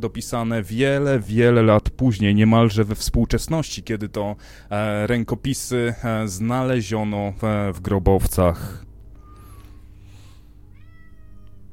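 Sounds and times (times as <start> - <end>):
speech: 0.0 - 8.9
steady low hum: 0.0 - 11.7
two cats meowing back and forth: 9.2 - 11.7.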